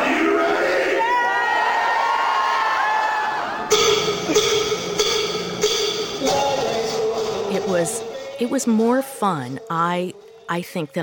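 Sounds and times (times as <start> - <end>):
large crowd screaming and cheering with whoops and shrieks: 0.0 - 7.5
speech: 7.8 - 11.0.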